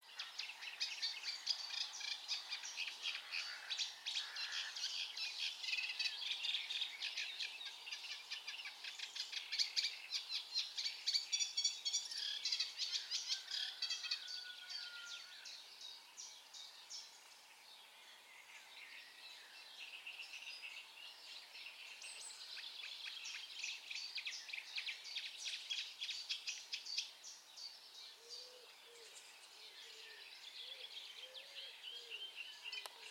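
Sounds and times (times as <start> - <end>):
Eurasian reed warbler singing: 0.0 - 33.0.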